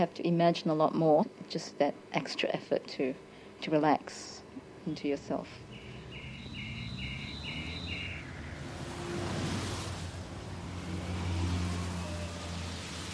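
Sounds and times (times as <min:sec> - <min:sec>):
speech: 0:00.0 - 0:05.6
low traffic rumble: 0:04.4 - 0:13.1
cars swooshing past on a street: 0:05.6 - 0:13.1.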